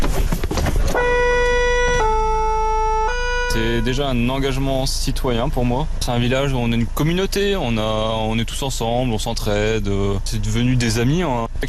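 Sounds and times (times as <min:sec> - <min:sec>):
rumbling engine noise: 0:00.0 - 0:11.6
horn of a volunteer fire brigade's emergency truck in a Picardy village blaring: 0:00.9 - 0:04.3
speech: 0:03.6 - 0:11.6.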